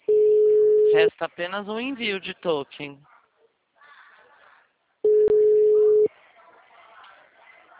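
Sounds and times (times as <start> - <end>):
telephone line tone while placing a call: 0.1 - 1.0, 5.1 - 6.1
speech: 0.9 - 3.1.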